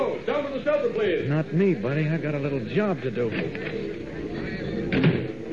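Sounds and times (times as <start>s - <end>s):
speech: 0.2s - 4.1s, 4.9s - 5.2s
rear door opening and closing: 4.9s - 5.4s.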